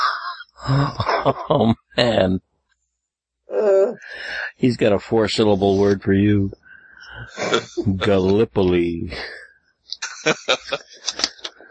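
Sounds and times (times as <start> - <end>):
person coughing: 0.6 - 1.9, 7.2 - 8.0
laughter: 0.6 - 2.4, 4.7 - 6.4, 7.1 - 9.3, 10.0 - 11.6
speech: 0.7 - 2.5, 3.6 - 9.4, 10.2 - 11.3.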